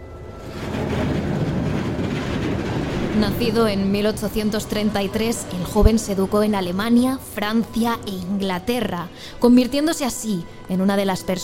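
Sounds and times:
train rumbling along railway tracks: 0:00.0 - 0:11.4
faint rhythmic rattle of train wheels: 0:00.1 - 0:08.9
speech: 0:03.2 - 0:11.4.

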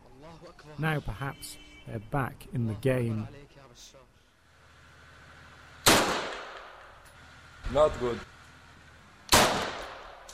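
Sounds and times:
speech: 0:00.3 - 0:04.1, 0:07.7 - 0:08.4
sniper rifle being test fired by a Free Army commander in Syria: 0:05.8 - 0:07.0, 0:09.3 - 0:10.3.

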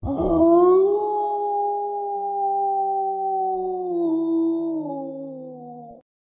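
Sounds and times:
long eerie werewolf howl: 0:00.0 - 0:06.0.

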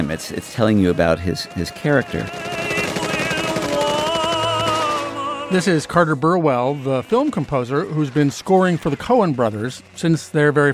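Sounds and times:
sustained tonal backdrop: 0:00.0 - 0:10.7
speech: 0:00.1 - 0:02.6, 0:05.5 - 0:10.7
Tommy gun firing in a gangster film scene: 0:01.0 - 0:10.6.

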